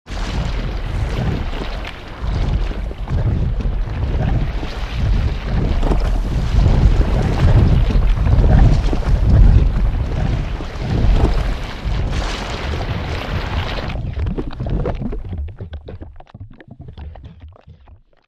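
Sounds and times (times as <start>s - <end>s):
lava low fluid movement: 0.1s - 18.0s.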